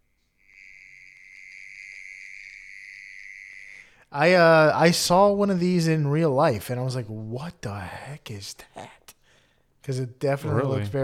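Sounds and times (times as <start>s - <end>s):
mole cricket high-pitched trill: 0.4s - 3.9s
speech: 4.1s - 9.0s, 9.8s - 11.0s.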